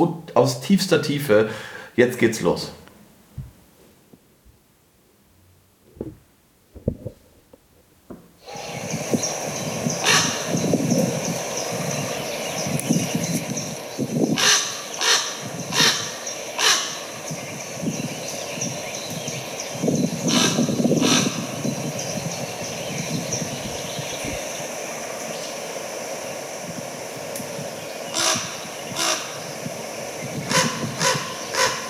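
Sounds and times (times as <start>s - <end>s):
speech: 0.0s - 2.8s
soft thumps: 3.3s - 3.6s, 5.9s - 7.2s
large bird giving deep resonant calls in flight: 8.4s - 25.6s, 27.8s - 31.8s
steady rushing noise: 8.4s - 31.8s.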